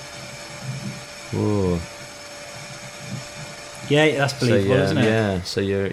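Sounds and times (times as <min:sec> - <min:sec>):
vacuum cleaner motor whirring: 0:00.0 - 0:05.9
speech: 0:01.3 - 0:02.0, 0:03.9 - 0:05.9.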